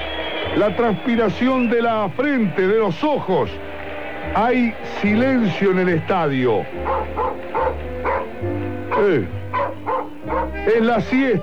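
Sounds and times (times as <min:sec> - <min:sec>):
speech: 0:00.5 - 0:08.4, 0:09.0 - 0:09.4, 0:10.3 - 0:11.4
dog barking: 0:06.8 - 0:08.3, 0:08.9 - 0:10.6.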